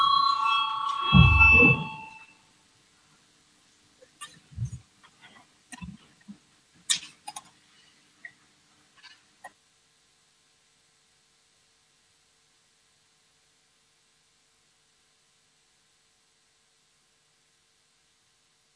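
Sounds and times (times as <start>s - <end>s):
loud electronic bell signalling the start of a vote on a committee proposal: 0.0s - 2.3s.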